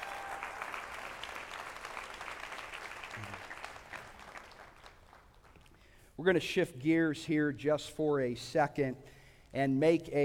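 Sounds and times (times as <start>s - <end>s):
church audience applauding: 0.0s - 5.8s
speech: 6.2s - 10.2s.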